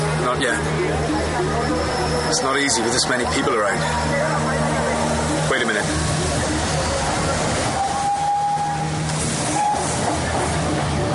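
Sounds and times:
speech: 0.3s - 4.7s, 5.7s - 6.2s
steam train pulling into station with hiss and rumble: 0.6s - 11.1s
faint whistle-like tone: 7.8s - 8.9s, 9.5s - 9.9s.

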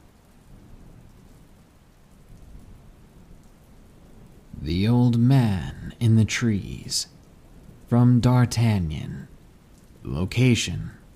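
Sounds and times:
steady dense rainfall in a thunderstorm: 0.0s - 11.1s
speech: 6.2s - 7.2s, 7.9s - 9.3s, 10.0s - 11.0s.

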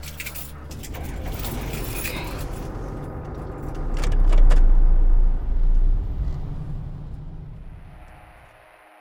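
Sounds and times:
light clinking and rattling inside the car cabin: 0.0s - 4.8s
car engine rumble: 0.0s - 8.6s
tire noise on road: 0.8s - 8.9s.

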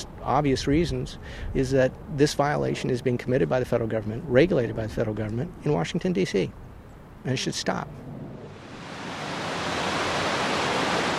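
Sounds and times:
speech: 0.2s - 6.6s, 7.2s - 8.1s
river water rushing into treatment plant intake channel: 8.6s - 11.1s.

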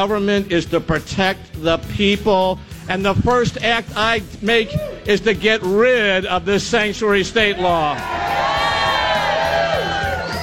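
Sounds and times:
speech: 0.0s - 8.3s
large crowd cheering at a political rally: 7.9s - 10.4s
people shouting: 8.0s - 10.4s.

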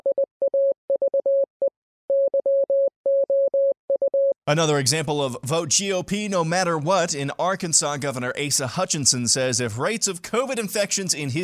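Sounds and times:
single-pitch Morse code beeps: 0.0s - 4.4s
speech: 4.5s - 11.4s.

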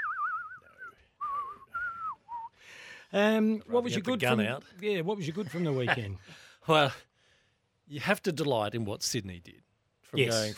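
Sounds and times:
person whistling a movie theme melody: 0.0s - 2.6s
speech: 3.1s - 7.1s, 7.9s - 10.5s.

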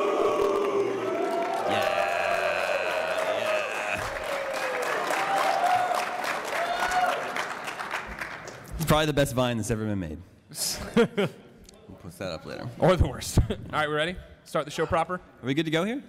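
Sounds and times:
whoops and yells: 0.0s - 7.4s
live crowd shouting and cheering: 0.0s - 7.8s
speech: 8.9s - 16.0s.

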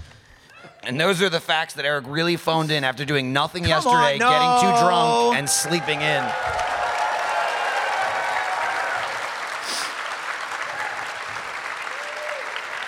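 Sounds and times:
speech: 0.8s - 6.8s
audience cheering and applause: 3.9s - 12.8s
bright whoops from the crowd: 4.1s - 9.4s, 11.9s - 12.8s.

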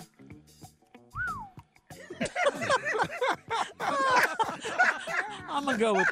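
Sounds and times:
squeaky whistle-like tones: 1.2s - 1.6s
voices chattering and laughing: 2.6s - 6.1s
speech: 5.5s - 6.1s.

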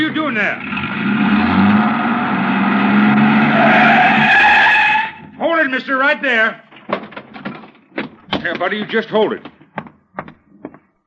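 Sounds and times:
speech: 0.0s - 1.4s, 5.6s - 6.6s, 8.4s - 9.5s
truck engine starting and roaring: 0.0s - 6.6s
truck tires skidding and squealing: 0.6s - 5.4s.

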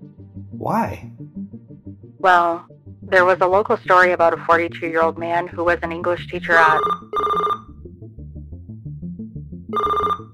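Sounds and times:
speech: 0.6s - 1.4s, 2.2s - 7.3s
telephone electronic ring tone: 6.6s - 7.7s, 9.8s - 10.3s.

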